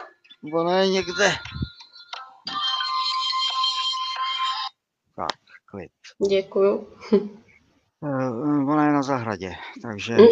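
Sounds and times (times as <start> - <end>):
woman's mobile phone electronic ringtone: 0.0 - 4.8
speech: 0.4 - 1.6, 5.8 - 7.4, 8.0 - 10.3.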